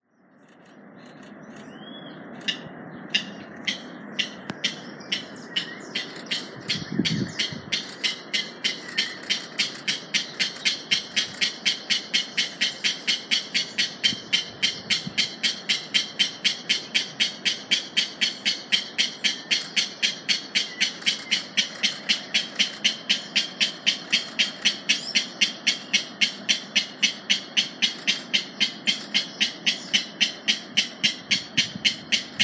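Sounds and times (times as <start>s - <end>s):
Mangrove rail calling: 0.2s - 32.4s.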